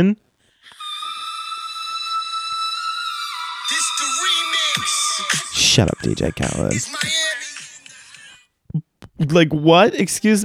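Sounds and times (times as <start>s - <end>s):
speech: 0.0s - 0.8s, 5.8s - 7.4s, 9.2s - 10.4s
loud sustained whistle tone with bright harmonics: 0.7s - 5.8s.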